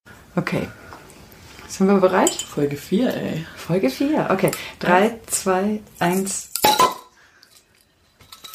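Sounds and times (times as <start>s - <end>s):
speech: 0.4s - 0.8s, 1.7s - 6.5s
champagne glasses clinking in a toast: 2.2s - 2.6s, 6.5s - 7.6s.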